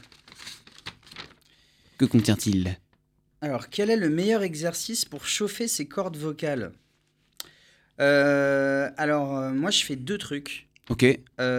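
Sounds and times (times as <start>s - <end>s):
small slip of paper rustling and crinkling as it is drawn and unfolded: 0.0s - 2.7s
speech: 2.0s - 2.8s, 3.4s - 6.8s, 8.0s - 11.5s.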